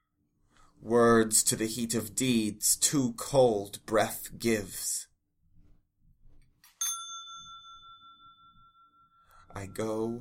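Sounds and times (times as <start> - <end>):
speech: 0.8 - 5.1, 9.6 - 10.2
single bright bell ringing: 6.7 - 9.9.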